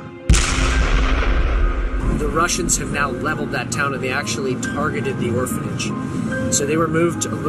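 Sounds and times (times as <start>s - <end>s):
machine gun fire at the start of an invasion: 0.3s - 3.5s
speech: 2.3s - 7.4s.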